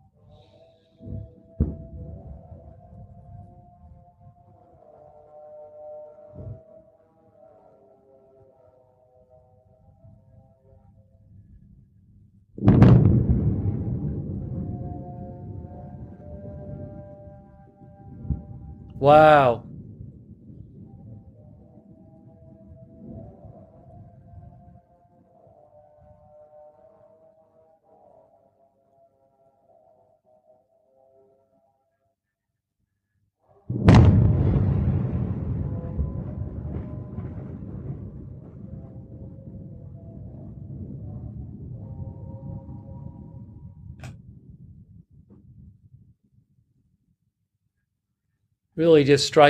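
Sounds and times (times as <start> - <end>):
loud distant explosion with deep rolling boom: 12.6 - 15.8, 33.7 - 39.1
call to prayer from a mosque: 18.9 - 19.6, 48.8 - 49.4
speech: 19.0 - 19.6, 48.8 - 49.4.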